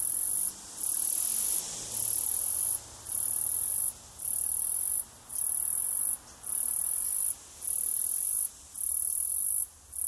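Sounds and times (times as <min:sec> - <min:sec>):
cicada in Australia giving very high hissing buzz: 0:00.0 - 0:10.0.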